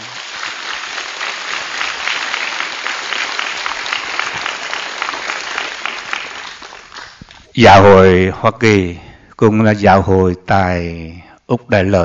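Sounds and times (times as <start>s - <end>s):
applause from a large audience: 0.0s - 7.5s
speech: 7.6s - 12.0s.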